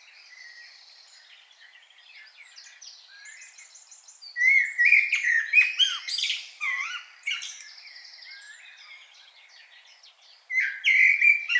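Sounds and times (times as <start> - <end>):
common blackbird Turdus merula whistling and twittering: 0.0 - 11.5.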